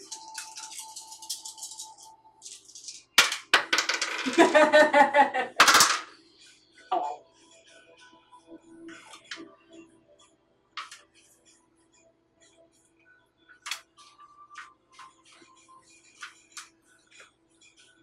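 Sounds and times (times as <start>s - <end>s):
dice clattering across a table during a tabletop role-playing game: 0.0s - 4.7s, 5.6s - 6.1s
laughter: 4.2s - 5.6s.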